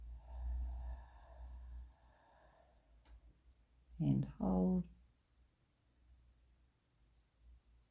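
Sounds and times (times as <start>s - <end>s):
person slowly exhaling during a breathing exercise: 0.0s - 2.8s
speech: 4.0s - 5.0s.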